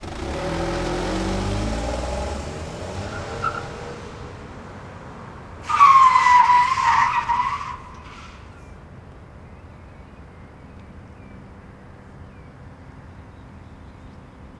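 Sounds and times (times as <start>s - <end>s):
car accelerating: 0.0s - 8.8s.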